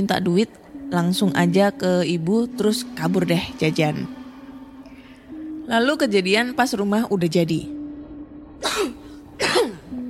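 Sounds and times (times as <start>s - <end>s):
speech: 0.0s - 4.2s, 5.7s - 7.8s, 8.6s - 9.7s
sharp coughs: 8.6s - 10.0s.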